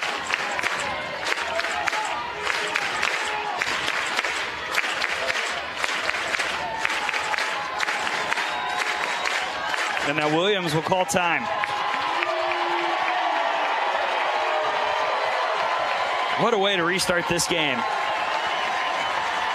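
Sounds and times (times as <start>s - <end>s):
stadium crowd cheering at a softball game: 0.0s - 19.5s
whistles from a stadium crowd: 8.1s - 9.5s
speech: 10.1s - 11.6s, 16.4s - 18.0s.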